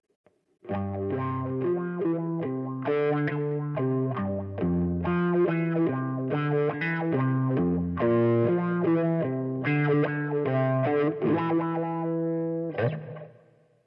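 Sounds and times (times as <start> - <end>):
wah guitar: 0.7 - 13.5.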